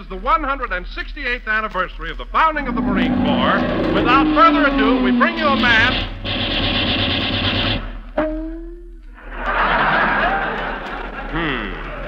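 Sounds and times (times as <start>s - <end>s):
speech: 0.1s - 6.7s
broad wash of steady noise: 2.3s - 8.0s
gunfire crack with a ringing, descending whine: 2.4s - 9.7s
gunfire sound effect rattling burst in a comedy program: 5.5s - 8.0s
laughter: 9.2s - 12.0s.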